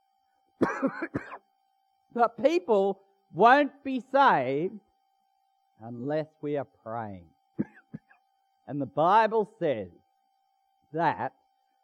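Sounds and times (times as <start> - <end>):
steady faint hum: 0.0 - 11.8
harsh coughs: 0.6 - 1.5, 7.6 - 8.2
speech: 0.8 - 1.4, 2.1 - 4.9, 5.8 - 7.7, 8.7 - 10.0, 10.9 - 11.4.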